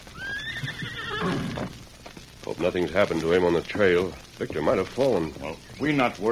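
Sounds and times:
hooves clopping: 0:00.0 - 0:06.3
horse whinnying: 0:00.1 - 0:01.8
speech: 0:02.6 - 0:06.3.

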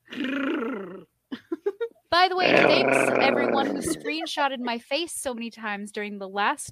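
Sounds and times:
person imitating a cat purring: 0:00.0 - 0:01.1, 0:02.4 - 0:04.2
laughter: 0:01.3 - 0:01.9, 0:03.2 - 0:04.8
speech: 0:02.2 - 0:06.7.

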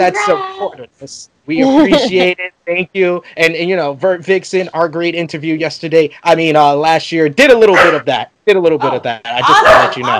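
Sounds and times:
speech: 0:00.0 - 0:10.1
laughter: 0:01.6 - 0:02.3, 0:09.2 - 0:10.1
dogs barking: 0:07.6 - 0:08.1, 0:09.5 - 0:10.1.

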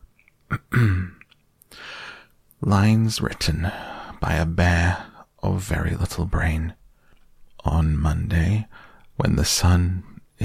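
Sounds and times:
throat clearing: 0:00.5 - 0:01.3
speech: 0:00.8 - 0:01.2, 0:02.6 - 0:06.8, 0:07.6 - 0:10.4.

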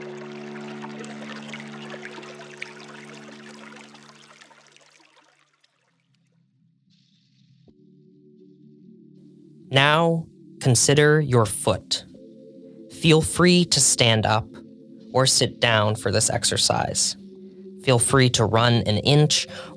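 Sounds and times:
water pouring into a filling vessel: 0:00.0 - 0:06.2
speech: 0:09.7 - 0:12.1, 0:13.0 - 0:17.2, 0:17.8 - 0:19.7.

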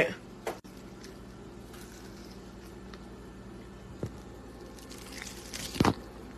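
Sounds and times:
quiet room hum: 0:00.0 - 0:06.3
biting into crispy cold Korean fried chicken: 0:04.7 - 0:06.0.

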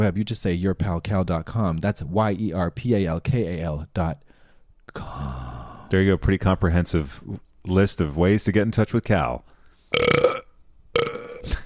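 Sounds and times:
speech: 0:00.0 - 0:04.3, 0:05.0 - 0:10.2
person belching: 0:09.9 - 0:11.6.

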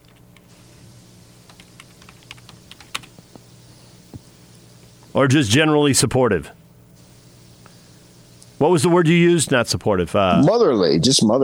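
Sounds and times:
low steady hum: 0:00.0 - 0:10.5
typing on a computer keyboard: 0:01.5 - 0:03.4
speech: 0:05.2 - 0:06.6, 0:08.6 - 0:11.4.

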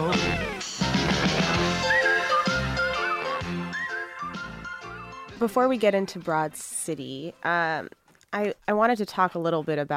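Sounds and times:
instrumental opening theme song of a TV show with bass: 0:00.0 - 0:07.5
whistled melody: 0:01.5 - 0:05.6
speech: 0:05.4 - 0:09.9.

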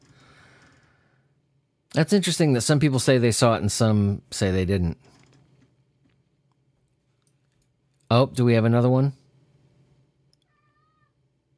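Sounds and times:
steady low hum: 0:00.0 - 0:11.5
speech: 0:02.0 - 0:05.2, 0:08.1 - 0:09.2
cat meowing to be let in: 0:10.4 - 0:11.2.

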